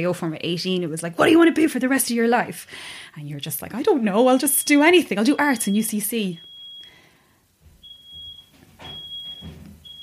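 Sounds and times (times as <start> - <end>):
speech: 0.0 - 6.5
smoke alarm beeping in high-pitched tones: 4.2 - 10.0.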